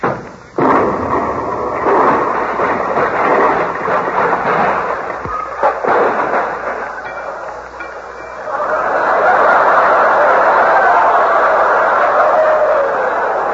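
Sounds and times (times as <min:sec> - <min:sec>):
explosion of a miniature atom bomb dropped on a floor: 0:00.0 - 0:08.2
laughter: 0:04.9 - 0:13.5.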